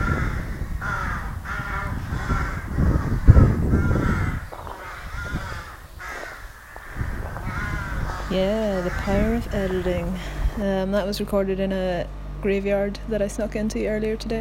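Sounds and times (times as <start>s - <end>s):
crows cawing outdoors in a graveyard: 0.0s - 10.5s
steady low rumble: 0.0s - 14.3s
speech: 8.4s - 14.3s.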